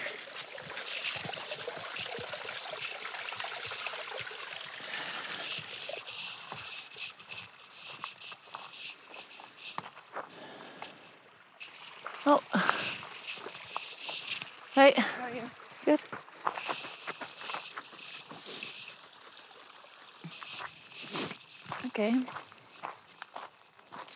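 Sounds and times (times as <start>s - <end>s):
water sloshing and trickling as a bandana is dipped and lifted: 0.0s - 23.9s
speech: 12.3s - 12.6s, 22.0s - 22.4s.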